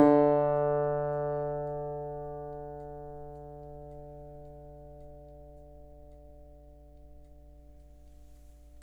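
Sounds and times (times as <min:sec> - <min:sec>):
country dobro ending: 0:00.0 - 0:06.5.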